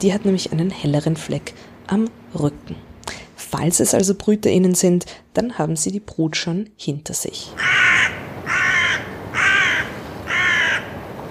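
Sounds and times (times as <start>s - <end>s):
speech: 0.0s - 2.9s, 3.5s - 8.2s
harsh crow caws: 7.6s - 11.0s.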